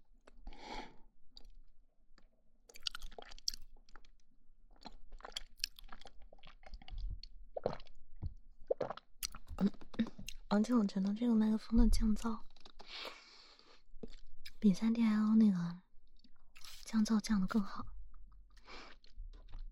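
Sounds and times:
close-miked chewing food: 0:02.2 - 0:11.2, 0:12.2 - 0:14.6, 0:18.5 - 0:19.7
speech: 0:10.5 - 0:13.1, 0:14.6 - 0:15.8, 0:16.9 - 0:17.9.

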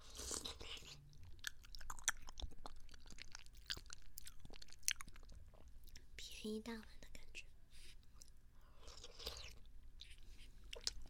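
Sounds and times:
mouth chewing soft tofu pudding: 0:00.0 - 0:06.0, 0:08.2 - 0:11.0
speech: 0:06.4 - 0:07.0.

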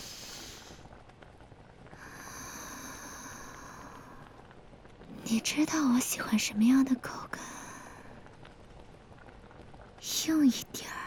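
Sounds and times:
water boiling in a pot: 0:00.0 - 0:11.0
speech: 0:05.3 - 0:07.5, 0:10.2 - 0:10.8.

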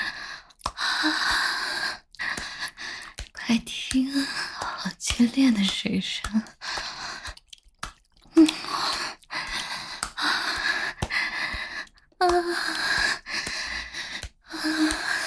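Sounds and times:
heavy ragged panting and gasping: 0:00.0 - 0:03.4, 0:06.4 - 0:07.5, 0:08.3 - 0:15.2
speech: 0:03.5 - 0:04.5, 0:05.2 - 0:06.6.

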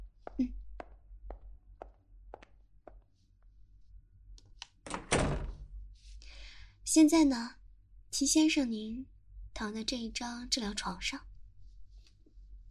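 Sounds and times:
speech: 0:00.4 - 0:00.6, 0:06.9 - 0:07.6, 0:08.2 - 0:11.3
door pushed shut in a treatment room: 0:04.9 - 0:05.6.

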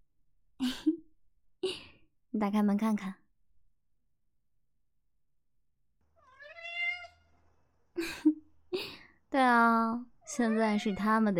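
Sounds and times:
speech: 0:02.4 - 0:03.2, 0:09.4 - 0:11.3
large Maine Coon cat meowing: 0:06.2 - 0:07.3, 0:10.2 - 0:11.1.

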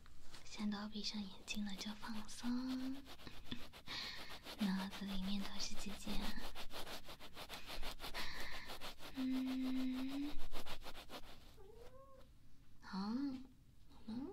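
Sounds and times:
speech: 0:00.6 - 0:03.8, 0:04.6 - 0:06.7, 0:09.2 - 0:10.6, 0:12.9 - 0:13.5, 0:14.1 - 0:14.3
steady rhythmic rubbing and scratching: 0:01.6 - 0:11.4
cat meowing while playing: 0:11.6 - 0:12.3.

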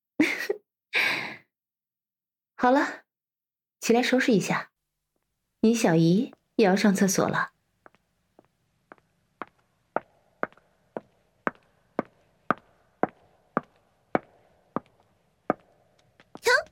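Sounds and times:
speech: 0:02.6 - 0:03.0, 0:03.8 - 0:04.7, 0:05.6 - 0:07.5
footsteps with sharp clicks on a hard floor: 0:07.8 - 0:16.6.

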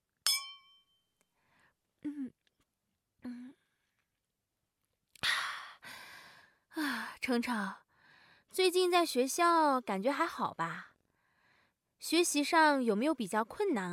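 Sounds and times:
two glasses of alcohol clinking in a toast: 0:00.3 - 0:00.9
speech: 0:07.3 - 0:07.8, 0:08.5 - 0:10.9, 0:12.0 - 0:13.9.

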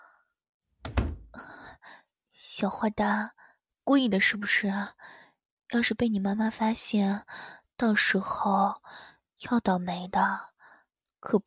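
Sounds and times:
door shutting thud: 0:00.8 - 0:01.4
speech: 0:02.4 - 0:10.5, 0:11.2 - 0:11.4.

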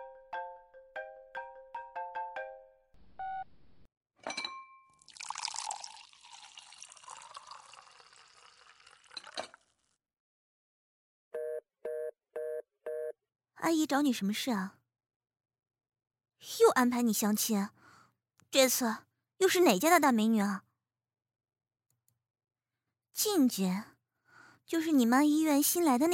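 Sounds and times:
phone ringing tones: 0:11.4 - 0:13.2
speech: 0:13.7 - 0:14.8, 0:16.8 - 0:17.8, 0:18.5 - 0:20.6, 0:23.2 - 0:23.9, 0:24.7 - 0:26.1.

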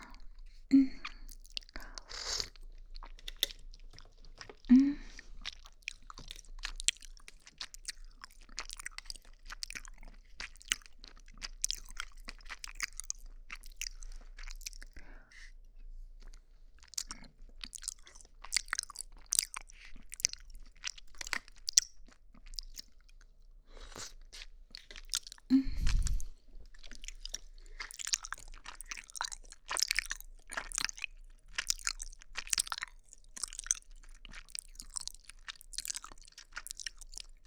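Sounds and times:
chewing and biting on sweet soft taro balls: 0:00.1 - 0:15.0, 0:15.8 - 0:37.4.

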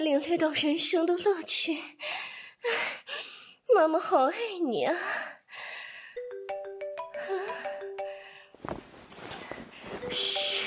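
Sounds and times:
speech: 0:00.0 - 0:02.9, 0:03.8 - 0:05.2
mobile phone ringtone with bright electronic melody: 0:06.2 - 0:08.5, 0:10.0 - 0:10.6
rustling noise: 0:08.6 - 0:10.6.

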